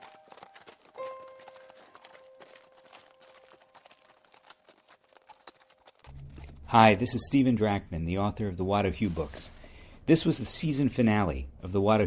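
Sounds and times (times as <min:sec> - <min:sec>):
ridden horse galloping away: 0:00.0 - 0:07.6
speech: 0:06.7 - 0:12.0.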